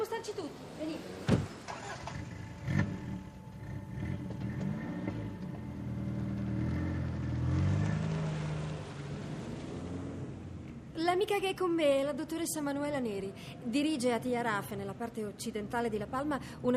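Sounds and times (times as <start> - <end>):
car engine humming as the vehicle drives: 0.0 - 10.9
speech: 11.2 - 16.7.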